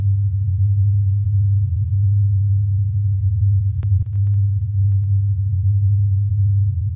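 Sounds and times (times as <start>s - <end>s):
low droning hum approximating the Taos hum: 0.0s - 6.9s
faint clicks: 3.8s - 5.2s.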